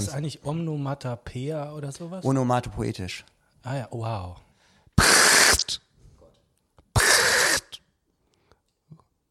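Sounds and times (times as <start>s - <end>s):
speech: 0.0s - 4.4s
person imitating a lesser short-toed lark call: 5.0s - 5.8s, 7.0s - 7.8s.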